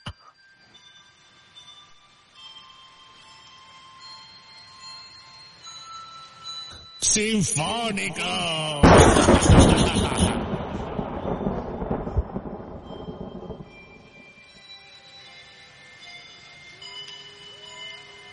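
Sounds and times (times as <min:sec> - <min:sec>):
speech: 0:07.1 - 0:10.5
laughter: 0:07.5 - 0:10.6
loud crash of broadband noise: 0:08.6 - 0:12.2
rumbling thunder: 0:08.8 - 0:14.1.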